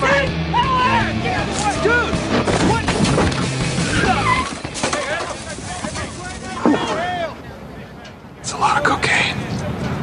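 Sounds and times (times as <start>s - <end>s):
voices: 0.0s - 10.0s
car braking hard with tires squealing and skidding in a movie scene: 0.6s - 7.4s.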